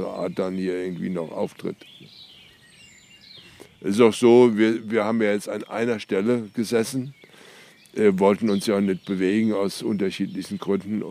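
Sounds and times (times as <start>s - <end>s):
speech: 0.0s - 2.1s, 3.8s - 7.2s, 7.9s - 11.1s
birdsong with thin high chirps and warbles: 0.0s - 11.1s.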